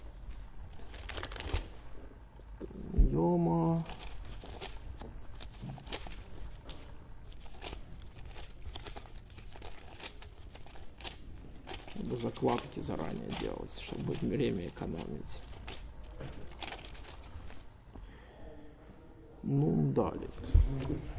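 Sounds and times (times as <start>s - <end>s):
paper book pages flipping as someone searches for a page: 0.7s - 1.8s, 3.6s - 17.7s
speech: 12.4s - 15.5s, 19.5s - 21.1s.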